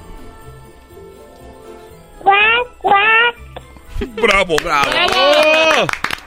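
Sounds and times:
voice imitating duck quacks: 2.2s - 3.4s
speech: 4.2s - 6.0s.

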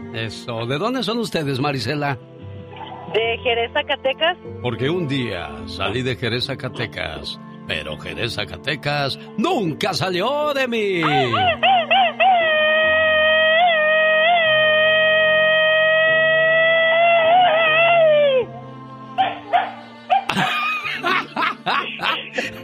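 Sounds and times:
speech: 0.1s - 2.3s, 3.1s - 11.7s
people laughing: 11.0s - 11.6s, 20.3s - 22.6s
angered female dog yipping, howling and whimpering: 11.0s - 20.3s.

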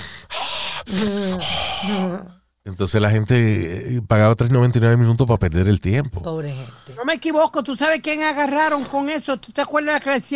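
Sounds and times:
deep breath drawn in during a guided meditation: 0.0s - 2.2s
speech: 0.8s - 10.3s.

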